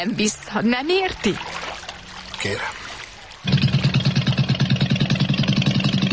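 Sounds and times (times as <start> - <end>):
speech: 0.0 - 1.6, 2.4 - 2.8
motorboat engine starting and idling: 3.4 - 6.1.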